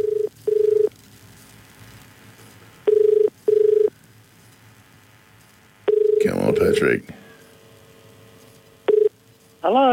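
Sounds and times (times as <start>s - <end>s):
outgoing phone call double ringing tone heard down the line: 0.0s - 0.9s, 2.9s - 3.9s, 5.9s - 7.0s, 8.9s - 9.2s
faint hum: 0.0s - 9.9s
speech: 6.6s - 7.2s, 9.7s - 9.9s.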